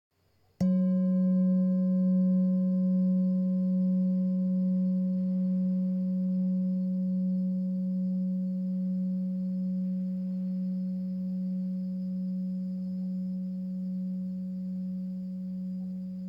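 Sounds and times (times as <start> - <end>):
heart chakra singing bowl 14cm: 0.6 - 16.2.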